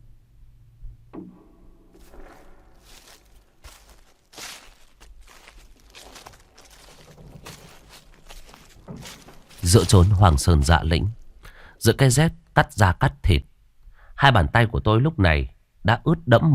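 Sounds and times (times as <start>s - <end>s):
slow footsteps on a cold mossy mountain at night: 1.9s - 11.5s
speech: 9.7s - 11.2s, 11.8s - 13.5s, 14.2s - 16.5s.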